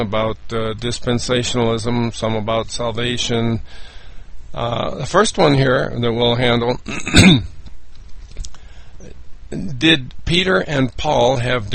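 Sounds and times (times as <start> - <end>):
speech: 0.0 - 7.6, 9.5 - 11.7
throat clearing: 6.8 - 7.6.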